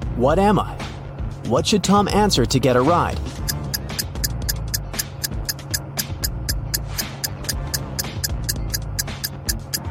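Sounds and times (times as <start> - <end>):
low droning musical bed: 0.0 - 9.8
speech: 0.2 - 0.8, 1.4 - 3.4
countdown timer clock ticking for a riddle: 3.3 - 9.8.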